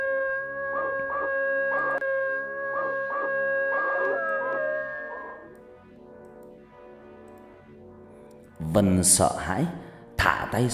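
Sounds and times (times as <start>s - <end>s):
white dog howling at night: 0.0s - 5.6s
steady processed tonal drone: 0.0s - 8.0s
speech: 8.8s - 9.8s, 10.5s - 10.7s.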